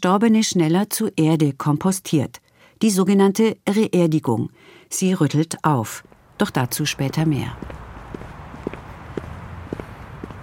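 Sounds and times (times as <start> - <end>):
speech: 0.0 - 7.8
brisk footsteps walking through a cemetery: 7.1 - 10.4.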